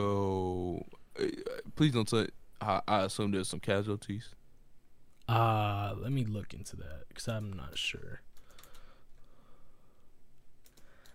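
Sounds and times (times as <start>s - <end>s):
soft low hum: 0.0s - 11.1s
speech: 1.2s - 4.4s, 5.3s - 8.3s
typing on a keyboard with one hand: 7.3s - 8.9s, 10.6s - 11.1s.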